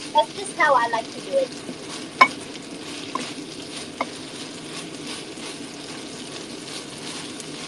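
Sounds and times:
meat and beans frying together in a pan: 0:00.0 - 0:07.6
speech: 0:00.2 - 0:02.4
stirring scraping in a pan: 0:01.5 - 0:07.6.

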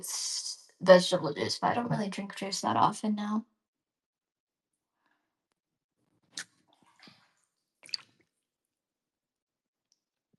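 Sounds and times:
speech: 0:00.0 - 0:03.5
faint water drips: 0:06.7 - 0:08.3.

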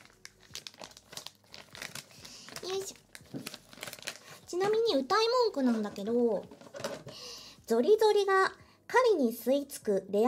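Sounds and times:
crinkly plastic package being torn and opened: 0:00.0 - 0:07.3
speech: 0:04.6 - 0:06.6, 0:07.7 - 0:10.2.

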